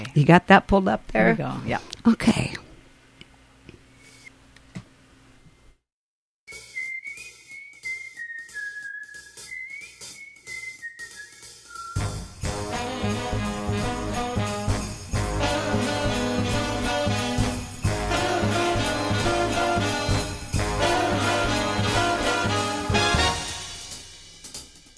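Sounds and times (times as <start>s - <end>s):
speech: 0.0s - 2.5s
recorded Broadway-style holiday song with full ensemble arrangement: 12.0s - 23.8s.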